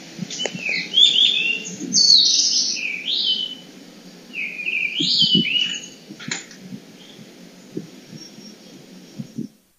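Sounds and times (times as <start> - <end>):
Blue-and-white flycatcher singing: 0.0 - 9.7
soft low thuds: 5.0 - 8.5, 9.1 - 9.6.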